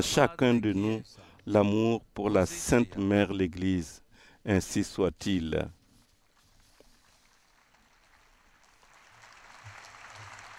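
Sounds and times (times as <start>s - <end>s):
speech: 0.0s - 5.8s
applause from a large crowd: 7.4s - 10.5s.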